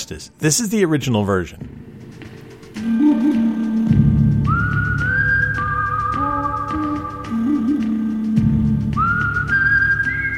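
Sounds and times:
speech: 0.1 - 1.9
whistled melody in Western-film style: 2.8 - 10.3.

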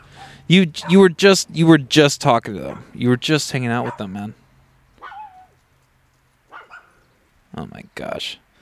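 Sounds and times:
speech: 0.5 - 4.4, 7.6 - 8.4
neighbor's dogs barking: 2.6 - 3.0, 3.8 - 4.2, 5.0 - 5.6, 6.5 - 7.0
dog's drawn-out yelping whine: 3.8 - 4.0, 5.0 - 5.6, 6.5 - 6.9.

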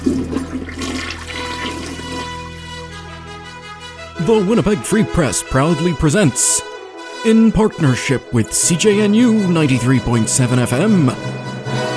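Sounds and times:
toilet flushing: 0.0 - 2.6
speech: 4.3 - 11.6.

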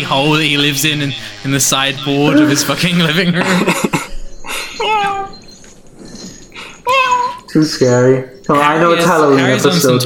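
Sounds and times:
speech: 0.0 - 4.1, 7.6 - 10.0
laughter: 1.0 - 5.4, 6.0 - 10.0
cat meowing: 6.8 - 7.5.

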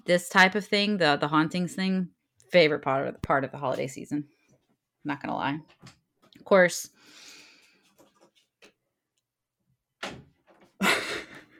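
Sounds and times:
speech: 0.0 - 4.4, 5.0 - 7.3
door swinging shut with whooshing thuds: 10.0 - 10.7.

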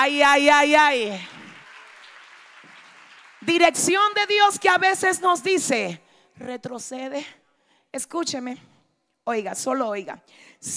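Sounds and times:
speech: 0.0 - 1.4, 3.4 - 8.7, 9.3 - 10.7
congregation applauding: 0.9 - 4.0.

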